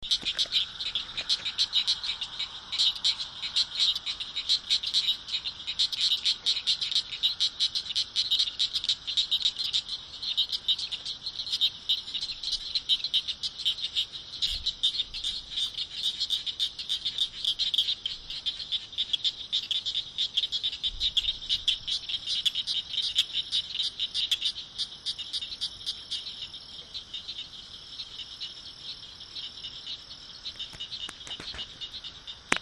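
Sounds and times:
Acris gryllus calling: 0:00.0 - 0:32.6.

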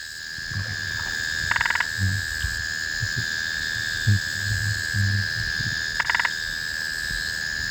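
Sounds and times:
soft low thumps: 0:00.4 - 0:03.3, 0:04.1 - 0:05.8
spotted marsh frog Limnodynastes tasmaniensis clicking calls: 0:00.4 - 0:07.6
steady high droning hum: 0:00.4 - 0:07.6.

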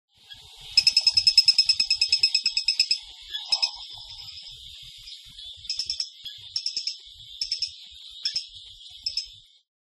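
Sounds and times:
Blommersia wittei calling: 0:00.8 - 0:04.6, 0:05.7 - 0:09.3.

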